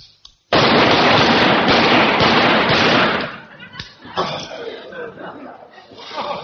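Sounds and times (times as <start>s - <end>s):
rapid rifle fire on an army firing range: 0.5s - 3.5s
people chuckling: 3.2s - 6.4s
quiet voices: 3.3s - 6.4s.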